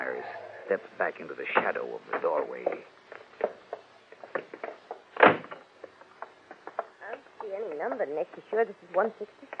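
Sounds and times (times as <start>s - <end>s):
speech: 0.1s - 3.5s, 7.8s - 9.5s
light knocks and clunks: 1.5s - 9.5s
car door slamming shut: 5.2s - 5.6s.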